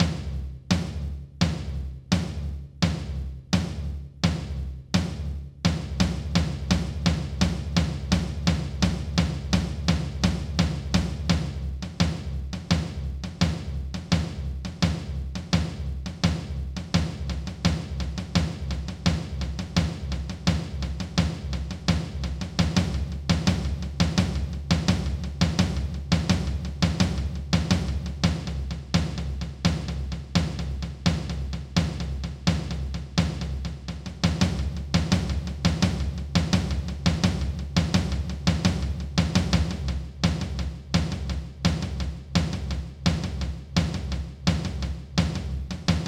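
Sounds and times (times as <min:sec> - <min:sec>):
basic taiko drum rhythm at 170 bpm: 0:00.0 - 0:46.0.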